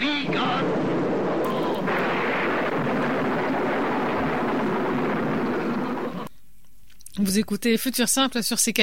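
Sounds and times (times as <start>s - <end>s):
long low rumble of thunder: 0.1s - 6.3s
speech: 7.2s - 8.8s.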